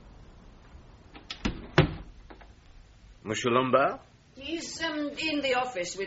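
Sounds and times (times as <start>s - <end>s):
house door creaky thud: 1.2s - 2.2s
house door pushed open with sharp wooden knocks: 1.4s - 2.1s
speech: 3.2s - 6.0s.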